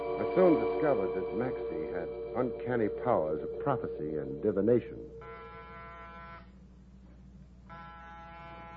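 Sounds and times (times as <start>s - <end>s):
speech: 0.2s - 5.3s
loud harsh electric door buzzer: 5.2s - 6.5s, 7.7s - 8.7s.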